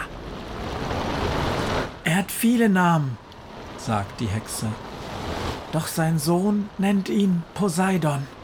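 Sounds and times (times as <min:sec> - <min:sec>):
crashing waves in a storm: 0:00.0 - 0:08.4
storm wind: 0:00.0 - 0:08.4
speech: 0:02.2 - 0:03.2, 0:03.9 - 0:04.9, 0:05.7 - 0:08.4.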